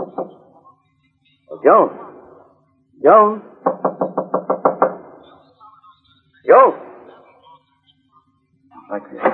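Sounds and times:
quick knocking on a wooden door: 0:00.0 - 0:00.4, 0:03.6 - 0:05.1
speech: 0:01.6 - 0:02.0, 0:03.0 - 0:03.5.

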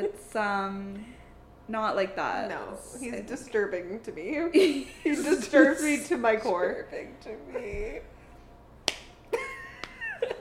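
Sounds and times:
speech: 0:00.4 - 0:08.1
light hand slaps: 0:08.8 - 0:09.2, 0:09.8 - 0:10.0.

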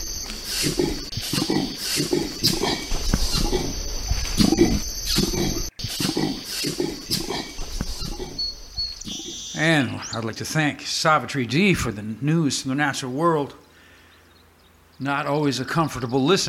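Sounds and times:
Bornean orangutan making rhythmic low puffing pulses: 0:00.0 - 0:09.3
Bornean orangutan constant high tone: 0:00.0 - 0:11.3
speech: 0:00.6 - 0:03.8, 0:09.6 - 0:13.6, 0:15.0 - 0:16.4.

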